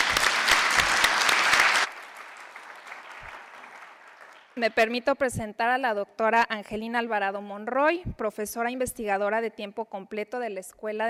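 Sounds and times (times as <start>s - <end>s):
audience applause: 0.0s - 4.6s
speech: 4.6s - 11.0s.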